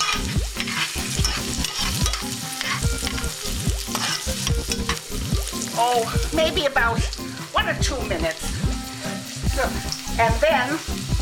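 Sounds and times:
utensil scraping while stirring onion in a pan: 0.0 - 5.0
rough-chopped medium onion sizzling in a hot pan: 0.0 - 11.2
speech: 5.8 - 8.6, 9.6 - 11.0.

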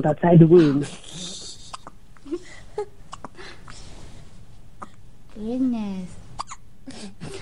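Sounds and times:
speech: 0.0 - 1.2, 5.4 - 6.2
newborn baby hiccuping: 1.6 - 2.0, 3.1 - 3.4, 4.8 - 5.0, 6.4 - 6.6.

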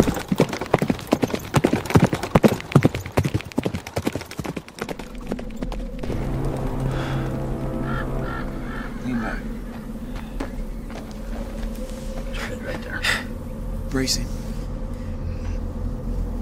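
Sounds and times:
horse hooves clip-clopping: 0.0 - 6.1, 9.7 - 12.4
sustained droning tone: 4.9 - 16.3
faint bird-like honk: 6.3 - 10.4.

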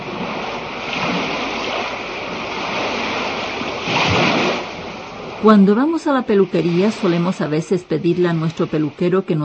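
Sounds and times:
sea waves breaking on shore: 0.0 - 9.4
speech: 5.4 - 9.4.

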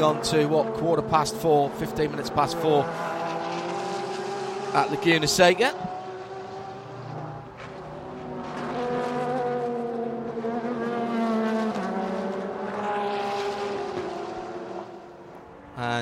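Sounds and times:
speech: 0.0 - 3.2, 4.7 - 6.0
sports racing car engines roaring during practice session: 0.0 - 15.9.

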